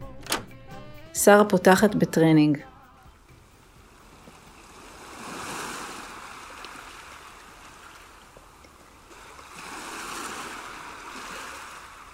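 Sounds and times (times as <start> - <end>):
speech: 1.2 - 2.7
sea waves washing onto the sand of a beach under moonlight: 4.1 - 8.3, 9.1 - 12.1.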